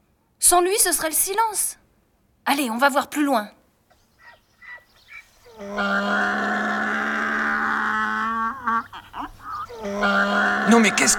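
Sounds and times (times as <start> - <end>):
speech: 0.5 - 1.8, 2.4 - 3.6, 5.6 - 6.6, 9.8 - 11.1
tethered donkey braying: 4.2 - 11.1.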